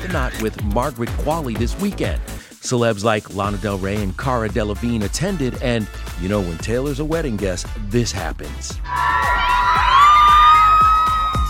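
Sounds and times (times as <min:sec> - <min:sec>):
speech: 0:00.1 - 0:09.4
hundreds of fans screaming and shrieking at a wedding rehearsal dinner: 0:08.8 - 0:11.4.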